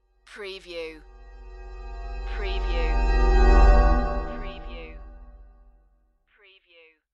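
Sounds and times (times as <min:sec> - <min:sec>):
metal whoosh: 0:01.0 - 0:05.5.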